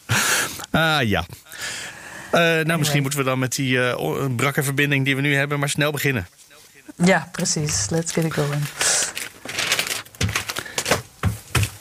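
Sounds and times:
speech: 0:00.8 - 0:01.5, 0:02.3 - 0:08.9
paper newspaper pages crinkling and rustling: 0:06.3 - 0:11.8.

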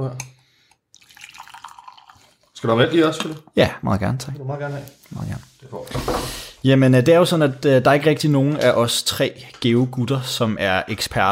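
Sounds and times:
speech: 0:00.0 - 0:00.3, 0:02.6 - 0:11.3
coffee pouring into a cup in an apartment outside Copenhagen: 0:01.0 - 0:02.9.

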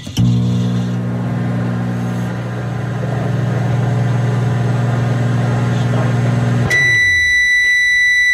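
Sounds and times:
microwave oven humming with a low droning whir: 0:00.0 - 0:08.3
microwave oven giving high clear beeps: 0:06.7 - 0:08.3.

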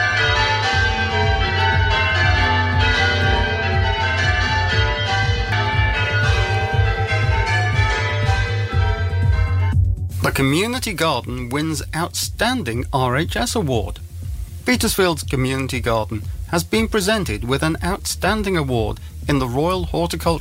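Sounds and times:
full peal of church bells ringing: 0:00.0 - 0:09.7
speech: 0:10.4 - 0:14.0, 0:14.7 - 0:20.4.

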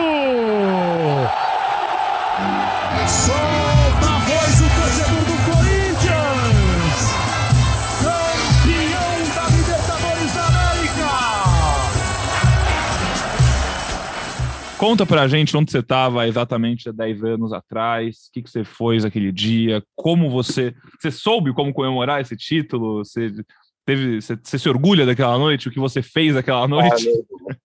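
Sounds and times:
large football crowd roaring, chanting and cheering: 0:00.0 - 0:14.9
speech: 0:14.8 - 0:27.6.

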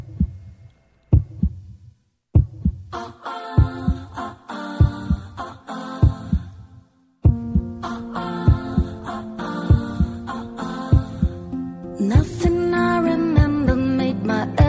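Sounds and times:
deep thudding heartbeat sound effect: 0:00.0 - 0:00.5, 0:01.1 - 0:01.7, 0:03.6 - 0:04.1, 0:04.8 - 0:05.4, 0:06.0 - 0:06.6, 0:07.3 - 0:07.8, 0:08.5 - 0:09.0, 0:09.7 - 0:10.3, 0:10.9 - 0:11.4, 0:12.2 - 0:12.6
synth music: 0:07.3 - 0:14.6.

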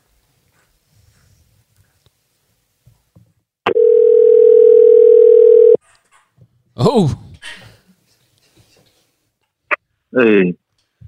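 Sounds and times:
telephone call ringing tone: 0:03.7 - 0:05.8
speech: 0:06.9 - 0:07.2.

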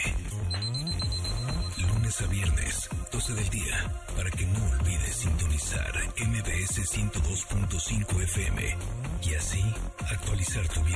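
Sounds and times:
electronic alarm on a smart device chiming: 0:00.4 - 0:02.1
speech: 0:02.2 - 0:10.9.

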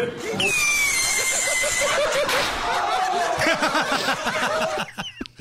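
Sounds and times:
group of people laughing and shrieking: 0:00.2 - 0:05.2
bottle rocket whistling screech: 0:00.4 - 0:02.2.

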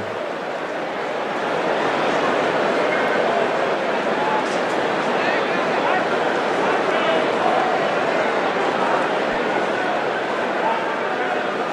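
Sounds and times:
large baseball stadium crowd murmur: 0:00.0 - 0:11.7.

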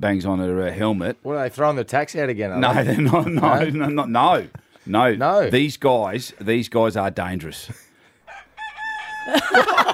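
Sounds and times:
speech: 0:00.0 - 0:07.9, 0:09.3 - 0:09.9
laughter: 0:02.6 - 0:04.6, 0:09.2 - 0:09.9
rooster crowing: 0:08.2 - 0:09.9.

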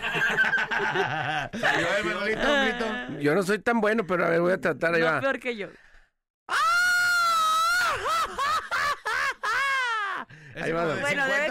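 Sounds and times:
laughter: 0:00.0 - 0:03.2, 0:07.8 - 0:11.2
speech: 0:00.8 - 0:05.9, 0:10.6 - 0:11.4
person's voice imitating a ghostly wailing woman's scream: 0:06.5 - 0:08.2.

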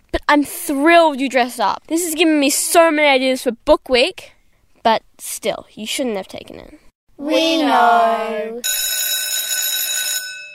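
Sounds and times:
speech: 0:00.3 - 0:09.2
loud harsh school bell ringing: 0:08.6 - 0:10.5.

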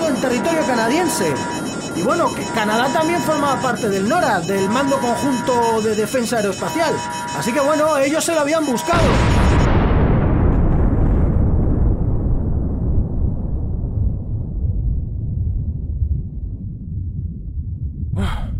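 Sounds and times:
speech: 0:00.2 - 0:09.4
massive nuclear explosion blast with deep roaring boom and rumbling decay: 0:09.0 - 0:18.1.

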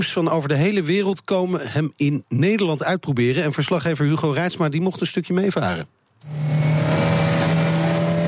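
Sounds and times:
speech: 0:00.0 - 0:06.8
powerful motorboat engine roaring at full throttle: 0:06.2 - 0:08.2.

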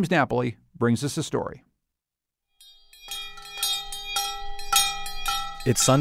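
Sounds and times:
speech: 0:00.0 - 0:01.7, 0:05.6 - 0:06.0
two large hand bells ringing at an outdoor hilltop church: 0:02.6 - 0:06.0.

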